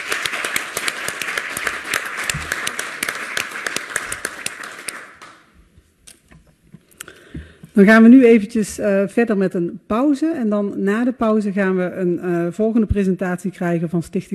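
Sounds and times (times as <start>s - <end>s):
audience applause at a municipal council meeting: 0.0s - 5.4s
speech: 7.8s - 14.3s.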